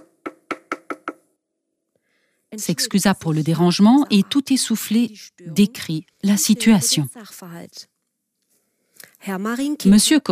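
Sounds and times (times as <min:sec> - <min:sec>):
knocking on a door: 0:00.0 - 0:01.2
speech: 0:02.5 - 0:07.9, 0:09.2 - 0:10.3.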